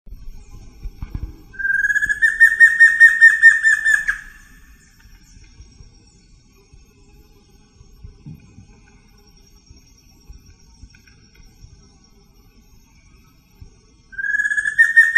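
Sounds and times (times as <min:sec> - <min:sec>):
Batara cinerea calling in PP Cruce Caballero: 0:01.6 - 0:04.8, 0:14.2 - 0:15.1.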